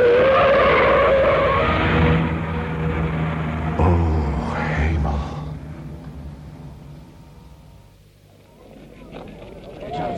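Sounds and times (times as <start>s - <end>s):
car tires skidding on a street: 0.0s - 3.7s
car engine rumbling: 0.0s - 9.8s.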